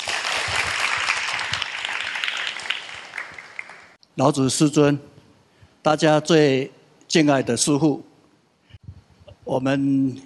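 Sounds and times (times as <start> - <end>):
crowd applause for the chairman invited to speak: 0.0 - 4.0
speech: 4.2 - 5.1, 5.8 - 8.1, 9.5 - 10.2.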